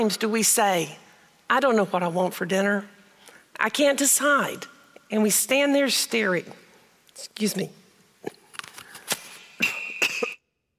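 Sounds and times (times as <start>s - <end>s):
speech: 0.0s - 3.0s, 3.6s - 6.6s, 7.2s - 8.4s
throat clearing: 9.6s - 10.4s
person coughing: 9.6s - 10.5s.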